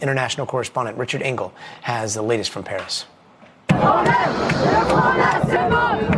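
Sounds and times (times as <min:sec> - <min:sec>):
speech: 0:00.0 - 0:03.2, 0:03.8 - 0:06.1
dense crowd of protesters shouting and chanting: 0:03.7 - 0:06.1.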